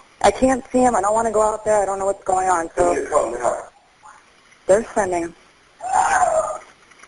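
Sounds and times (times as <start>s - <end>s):
speech: 0.2s - 3.7s, 4.7s - 5.4s
distant human voice screaming for help: 5.8s - 6.7s.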